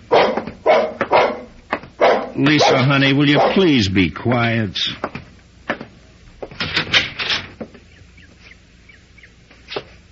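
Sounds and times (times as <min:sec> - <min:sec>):
dog barking: 0:00.1 - 0:03.7
speech: 0:02.4 - 0:05.1.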